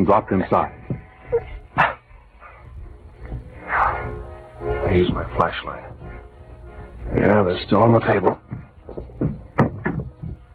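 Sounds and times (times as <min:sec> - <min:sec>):
speech: 0:00.0 - 0:01.9, 0:04.6 - 0:06.0, 0:07.0 - 0:09.4
wooden chair bumping and scraping in a darkened living room: 0:08.3 - 0:10.5.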